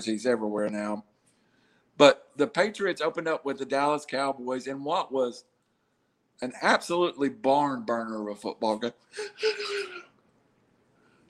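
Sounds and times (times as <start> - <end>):
speech: 0.0 - 1.1, 2.0 - 5.5, 6.4 - 10.1
person yawning with a breathy voiced exhale: 9.2 - 10.1.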